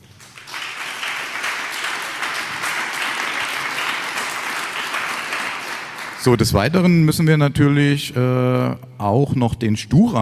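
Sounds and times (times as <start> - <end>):
audience applause: 0.0 - 6.7
speech: 6.2 - 10.2.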